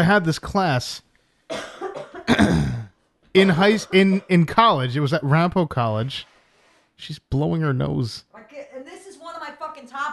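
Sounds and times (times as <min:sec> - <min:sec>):
speech: 0:00.0 - 0:01.7, 0:03.4 - 0:06.3, 0:07.0 - 0:08.5
harsh coughing fit: 0:01.5 - 0:05.0.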